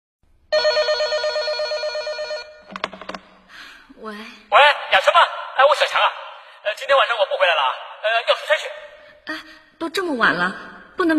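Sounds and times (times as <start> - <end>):
telephone ringing with a bright warbling electronic tone: 0.5 - 3.2
speech: 4.0 - 11.1.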